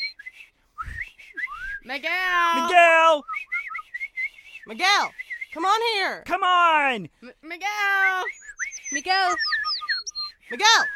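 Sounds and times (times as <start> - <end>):
person whistling to call a dog: 0.0 - 1.9, 3.2 - 5.6, 8.1 - 10.9
speech: 1.8 - 3.5, 4.7 - 9.6, 10.5 - 10.9.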